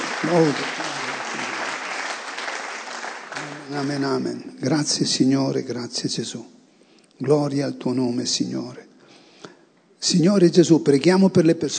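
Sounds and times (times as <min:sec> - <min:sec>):
congregation clapping at a church worship service: 0:00.0 - 0:04.4
speech: 0:00.3 - 0:00.9, 0:03.7 - 0:06.6, 0:07.2 - 0:08.9, 0:10.0 - 0:11.7.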